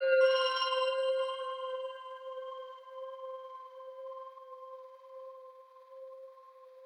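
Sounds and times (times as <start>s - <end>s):
bell: 0.0s - 5.0s.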